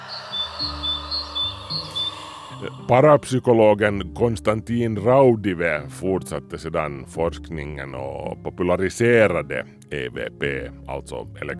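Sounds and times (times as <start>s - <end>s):
birds chirping and singing: 0.0s - 3.3s
speech: 2.6s - 11.5s.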